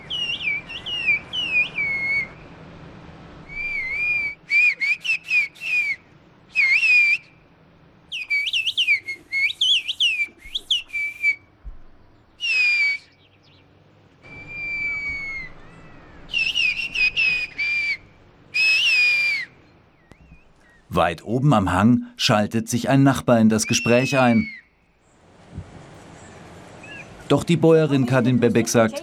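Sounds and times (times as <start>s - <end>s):
two people conversing in whistled bird language: 0.0s - 2.4s, 3.5s - 7.3s, 8.2s - 11.4s, 12.4s - 13.2s, 14.3s - 18.0s, 18.6s - 20.4s, 23.6s - 24.8s
speech: 21.0s - 24.6s, 27.3s - 29.0s.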